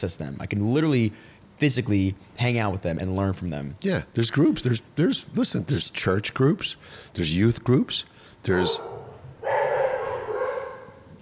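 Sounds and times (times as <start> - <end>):
speech: 0.0 - 9.0
dog barking: 8.6 - 11.1.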